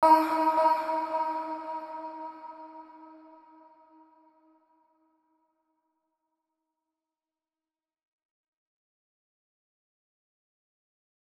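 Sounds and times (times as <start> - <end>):
vocals at 110 bpm in E: 0.0 - 4.0.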